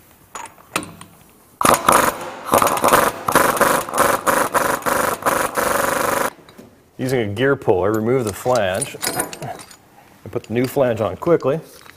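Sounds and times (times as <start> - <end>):
impact wrench loosening a stubborn pinion nut on a differential: 1.6 - 6.6
speech: 7.0 - 9.7, 10.3 - 11.8.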